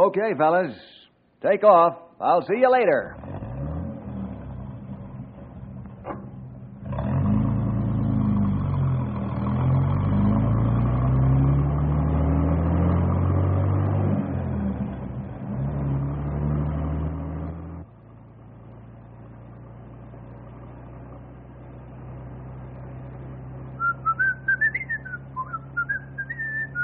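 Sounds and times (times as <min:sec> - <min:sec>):
speech: 0:00.0 - 0:03.2
bus engine starting and driving off: 0:03.1 - 0:26.8
man whistling a tune: 0:23.8 - 0:26.8.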